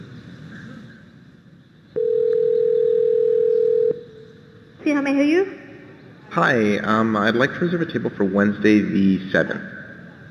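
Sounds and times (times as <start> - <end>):
telephone ringback tone on a call to a small restaurant: 2.0 - 4.1
speech: 4.9 - 5.6, 6.4 - 9.7.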